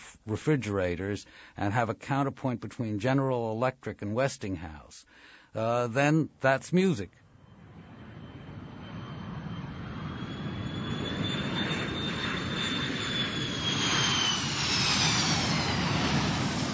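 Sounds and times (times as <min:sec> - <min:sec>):
speech: 0:00.2 - 0:07.2
jet airplane flying overhead with high whining tone: 0:07.3 - 0:16.7.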